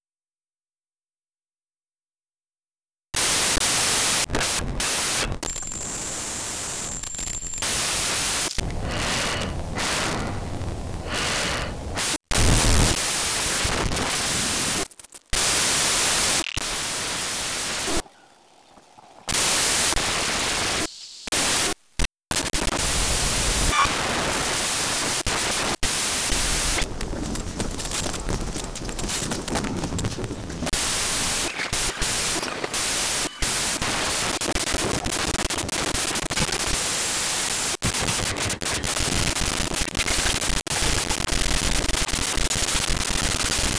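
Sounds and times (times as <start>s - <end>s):
glitchy data moshing digital noise: 3.2s - 43.7s.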